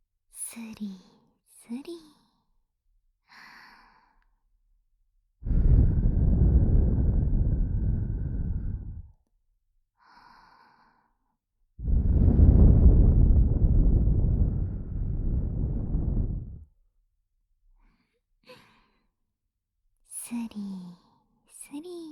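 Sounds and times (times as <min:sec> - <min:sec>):
speech: 0:00.6 - 0:01.1
breath blown onto the microphone: 0:05.4 - 0:09.1, 0:11.8 - 0:16.7.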